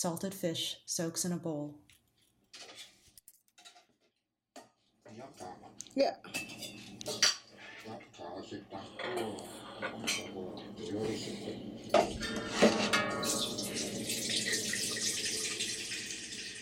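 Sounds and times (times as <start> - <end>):
speech: 0.0 - 1.8, 5.1 - 7.3, 7.9 - 12.6
washing machine running: 9.2 - 16.6
water pouring into a washing machine: 13.4 - 16.6.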